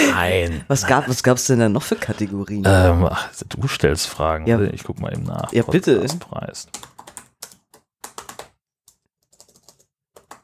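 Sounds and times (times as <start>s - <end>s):
speech: 0.1s - 7.0s
typing on a computer keyboard: 5.0s - 10.4s.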